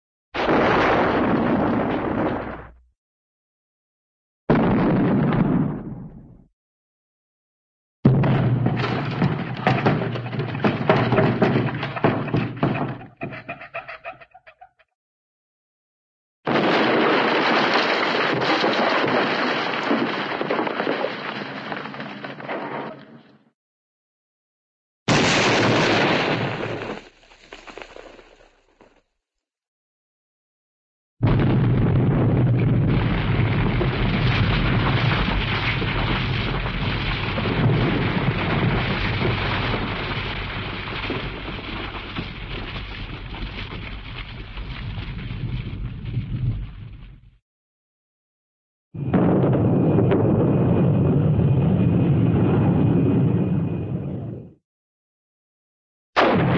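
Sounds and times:
small cartoon explosion with debris: 0.4s - 2.8s, 4.5s - 6.5s, 8.1s - 13.0s, 16.5s - 23.1s, 25.1s - 29.0s, 31.2s - 47.4s, 49.0s - 53.4s, 56.2s - 56.5s.

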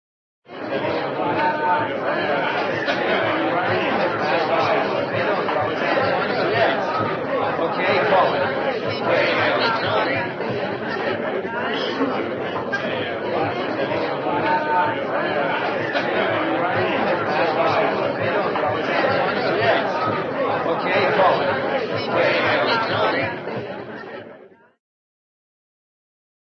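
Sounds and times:
laughter: 0.5s - 24.3s
restless cartoon crowd waiting: 0.5s - 24.7s.

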